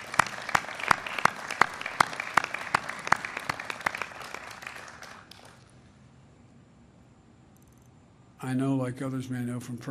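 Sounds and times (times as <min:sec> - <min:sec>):
one pair of hands clapping in a steady, evenly spaced rhythm: 0:00.0 - 0:05.7
sustained audience applause: 0:00.0 - 0:05.7
speech: 0:08.4 - 0:09.8.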